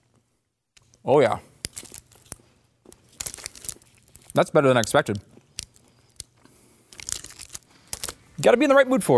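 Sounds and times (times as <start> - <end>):
speech: 1.0 - 1.5, 4.4 - 5.3, 8.4 - 9.1
biting and chewing a white chocolate bar with Fruity Pebbles cereal: 1.6 - 8.2
crisp crackles of chewing a white chocolate bar: 1.6 - 8.3.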